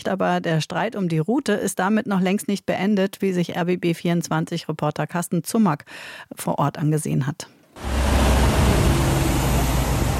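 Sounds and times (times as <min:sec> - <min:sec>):
speech: 0:00.0 - 0:08.0
broad wash of road noise: 0:07.7 - 0:10.1
columns of trucks and cars passing through town: 0:07.8 - 0:10.1.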